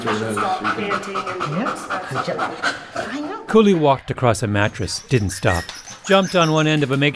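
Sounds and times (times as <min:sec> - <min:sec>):
female dog panting during training: 0:00.0 - 0:07.0
speech: 0:00.0 - 0:07.1.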